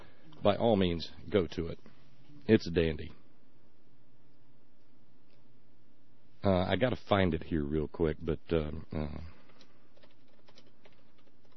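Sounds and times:
speech: 0:00.4 - 0:01.9, 0:02.5 - 0:03.2, 0:06.4 - 0:09.3
typing on a computer keyboard: 0:09.4 - 0:11.5.

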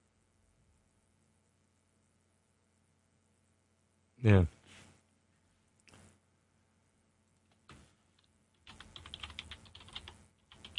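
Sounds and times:
low steady hum: 0:00.0 - 0:10.7
speech: 0:04.2 - 0:04.6
computer keyboard typing: 0:07.5 - 0:10.7.

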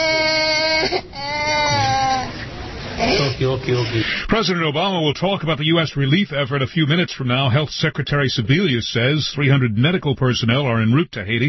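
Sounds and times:
injured infant girl wailing in a hospital: 0:00.0 - 0:02.4, 0:03.0 - 0:03.4
rough noisy sound: 0:00.0 - 0:11.4
father comforting infant: 0:03.0 - 0:11.4
speech: 0:03.4 - 0:11.4.

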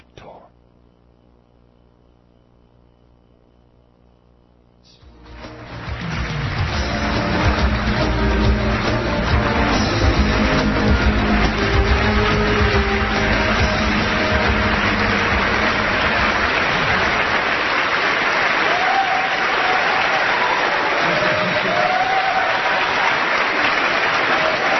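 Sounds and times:
audience applause at a public event: 0:05.1 - 0:24.7.

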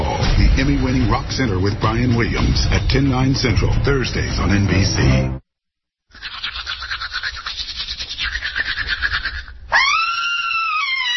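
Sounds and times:
speech: 0:00.6 - 0:05.4
toothbrush scrubbing: 0:06.1 - 0:09.5
woman screaming after brushing teeth: 0:09.7 - 0:11.1.

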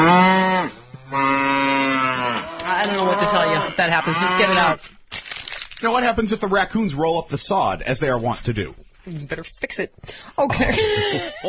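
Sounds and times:
650-pound cow fallen into a backyard swimming pool in South Carolina mooing: 0:00.0 - 0:04.8
speech: 0:03.8 - 0:05.0, 0:05.8 - 0:11.4
laughter: 0:10.4 - 0:11.4.

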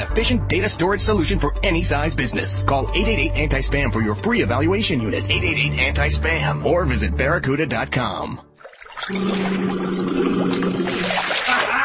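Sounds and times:
speech: 0:00.0 - 0:11.4
air blown through bath water bubbling: 0:08.6 - 0:11.5.

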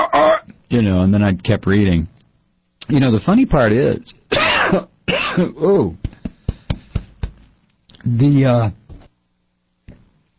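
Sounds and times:
speech: 0:00.7 - 0:02.2, 0:02.9 - 0:06.0, 0:08.0 - 0:08.8
man coughing: 0:04.3 - 0:05.6
man clearing throat: 0:04.3 - 0:05.8.

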